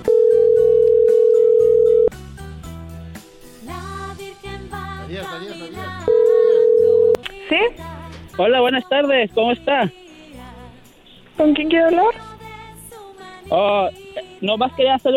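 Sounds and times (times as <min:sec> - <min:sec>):
telephone dialing tones: 0:00.0 - 0:02.1, 0:06.1 - 0:07.2
speech: 0:08.4 - 0:10.0, 0:11.4 - 0:12.2, 0:13.5 - 0:15.1.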